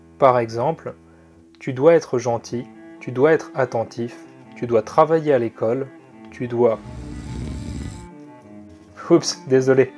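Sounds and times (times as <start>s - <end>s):
speech: 0.2s - 1.0s, 1.6s - 7.1s, 9.1s - 9.9s
loud rasping snore: 6.7s - 8.1s.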